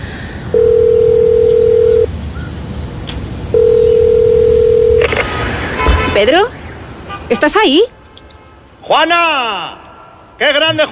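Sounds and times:
low hum: 0:00.0 - 0:02.8, 0:03.5 - 0:05.2
telephone ringback tones: 0:00.5 - 0:02.1, 0:03.6 - 0:05.1
speech: 0:06.2 - 0:06.6, 0:07.3 - 0:08.0, 0:08.9 - 0:09.8, 0:10.4 - 0:10.9.

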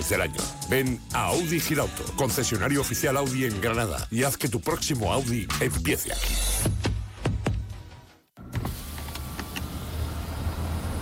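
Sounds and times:
speech: 0:00.0 - 0:06.8
car power window motor whirring as the window rolls down: 0:08.4 - 0:10.9
road and engine noise in a car cabin with the window open: 0:08.4 - 0:10.9.

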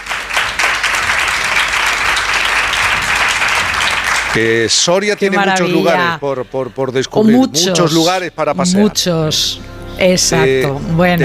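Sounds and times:
audience applause: 0:00.0 - 0:05.4
speech: 0:04.4 - 0:11.2.

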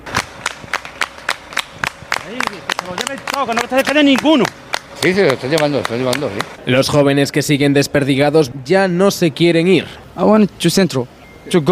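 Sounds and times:
busy outdoor crowd cheering soldiers in the street: 0:00.0 - 0:06.6
rhythmic clapping in unison for soldiers: 0:00.0 - 0:06.6
speech: 0:02.3 - 0:11.6.

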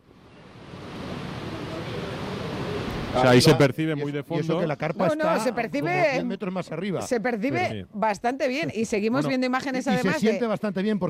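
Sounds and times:
heavy rain falling outdoors: 0:00.7 - 0:03.5
speech: 0:03.1 - 0:11.0.

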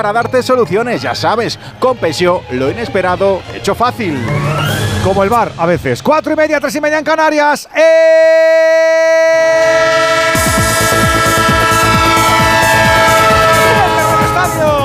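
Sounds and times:
speech: 0:00.0 - 0:10.7
sustained loud train horn chord: 0:09.6 - 0:14.8.

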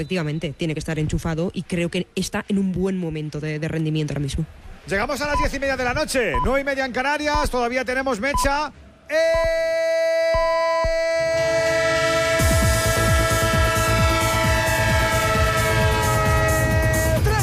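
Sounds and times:
speech: 0:00.0 - 0:10.5
train horn blaring a loud sustained chord: 0:11.3 - 0:17.3.

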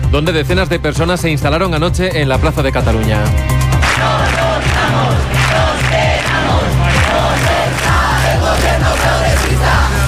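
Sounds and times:
speech: 0:00.1 - 0:07.5
large crowd of protesters chanting in unison at a housing encampment in Spain: 0:03.7 - 0:10.0.

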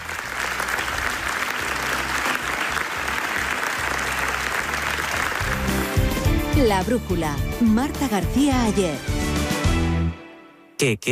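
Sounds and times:
large crowd applauding in a standing ovation at a film festival: 0:00.0 - 0:06.5
speech: 0:06.6 - 0:09.2, 0:10.8 - 0:11.1.

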